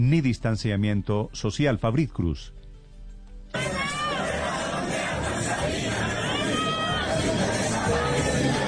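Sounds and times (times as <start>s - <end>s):
speech: 0.0s - 2.6s
crowd of young fans singing and shouting at an outdoor hip hop concert: 3.6s - 8.6s.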